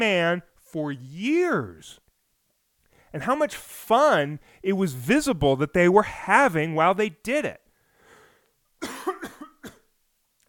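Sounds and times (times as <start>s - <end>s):
speech: 0.0s - 2.0s, 3.1s - 7.6s
person coughing harshly: 8.8s - 9.9s.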